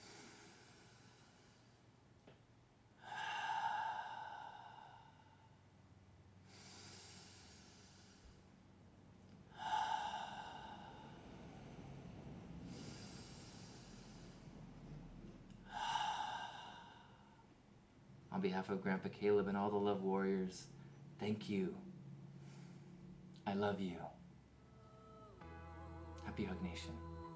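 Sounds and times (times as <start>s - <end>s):
deep breaths in and out: 0.0s - 2.1s, 2.9s - 18.3s, 20.7s - 21.2s, 21.9s - 23.3s
speech: 18.4s - 21.9s, 23.4s - 24.2s, 26.4s - 27.1s.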